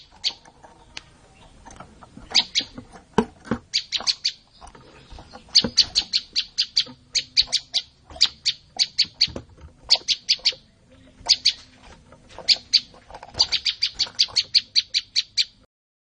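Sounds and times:
olive-backed tailorbird song: 0.0 - 15.7.

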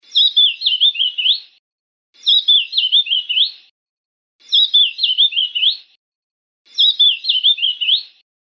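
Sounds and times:
black-crowned white-eye singing: 0.0 - 1.6, 2.2 - 3.7, 4.4 - 6.0, 6.7 - 8.2.

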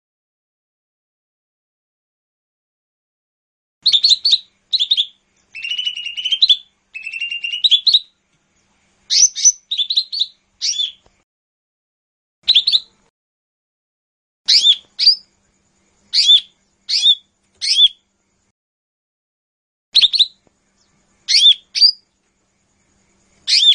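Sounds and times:
Lesser green leafbird song with chirps and buzzy trills: 3.8 - 11.2, 12.4 - 13.1, 14.5 - 18.5, 20.0 - 23.7.

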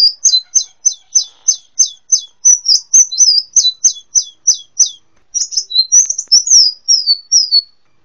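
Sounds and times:
brown-throated sunbird singing: 0.0 - 8.0.

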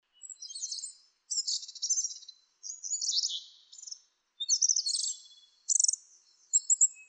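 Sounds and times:
Asian brown flycatcher singing: 0.1 - 7.0.

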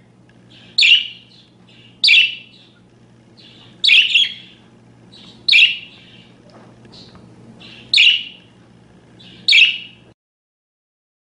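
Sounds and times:
fainter parakeet chattering calls: 0.4 - 8.5, 9.1 - 10.1
parakeet making harsh screeches: 0.5 - 2.7, 3.4 - 6.3, 7.0 - 8.5, 9.2 - 10.0.

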